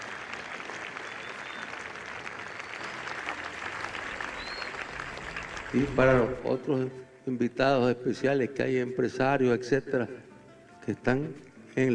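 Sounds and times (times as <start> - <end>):
sustained applause from a large audience: 0.0 - 6.4
speech: 5.7 - 10.3, 10.9 - 11.9.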